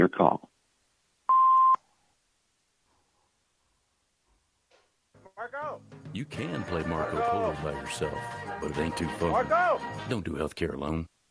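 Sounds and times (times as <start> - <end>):
speech: 0.0 - 0.5, 5.4 - 11.2
answering machine beep: 1.3 - 1.8.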